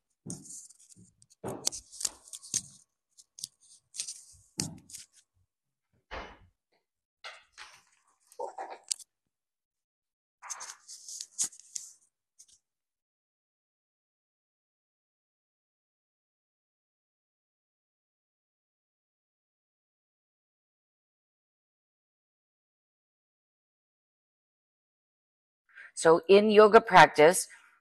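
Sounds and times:
speech: 0.2s - 0.5s, 26.0s - 27.6s
sheet of paper rustling and crinkling as it is handled during yoga practice: 0.3s - 5.2s, 10.4s - 12.6s.

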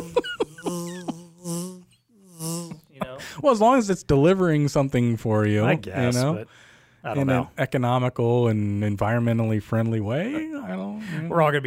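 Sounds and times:
person imitating a drone's buzz with their voice: 0.0s - 3.1s
speech: 3.4s - 11.6s.

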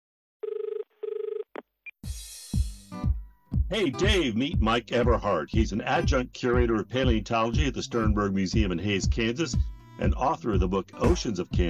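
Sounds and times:
telephone ringing: 0.4s - 1.6s
speech: 3.7s - 11.6s.

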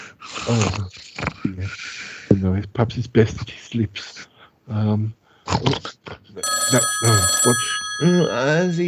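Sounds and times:
speech: 0.5s - 1.1s, 2.8s - 8.8s
telephone ringing with electronic trill: 6.4s - 8.8s.

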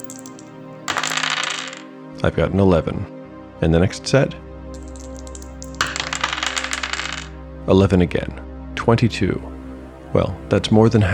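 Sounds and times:
six-sided dice clattering across a hard surface: 0.0s - 1.8s, 4.8s - 7.3s
speech: 2.2s - 4.5s, 7.7s - 9.5s, 10.1s - 11.1s.

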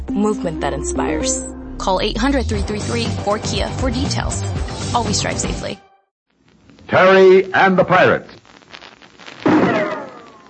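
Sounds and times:
speech: 0.1s - 5.9s, 6.9s - 8.4s
rifle shot in a snowy mountain valley by moonlight: 9.4s - 10.4s.

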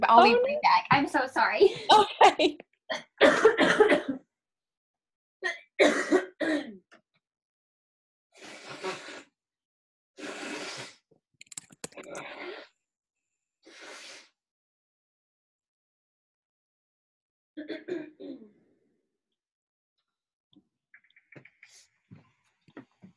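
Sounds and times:
speech: 0.0s - 3.8s
laughter: 1.6s - 2.6s
person coughing from a cold: 2.9s - 4.2s, 5.4s - 6.8s
nose blowing from a cold: 8.4s - 9.3s, 10.2s - 11.0s, 13.6s - 14.3s.

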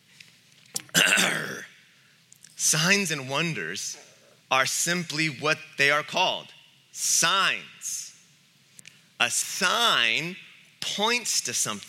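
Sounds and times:
throat clearing: 0.8s - 1.7s
speech: 2.7s - 8.0s, 9.2s - 11.8s.

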